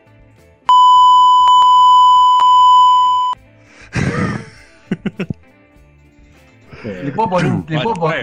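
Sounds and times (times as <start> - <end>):
censor bleep high-pitched tone: 0.7 - 3.4
laughter: 3.9 - 5.4
speech: 7.1 - 8.2.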